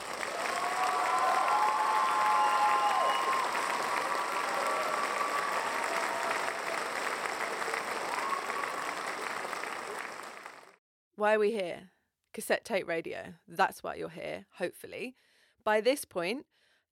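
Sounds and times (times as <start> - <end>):
crowd applause sound effect: 0.0 - 10.8
cheering whistles: 0.2 - 10.6
speech: 11.2 - 16.9.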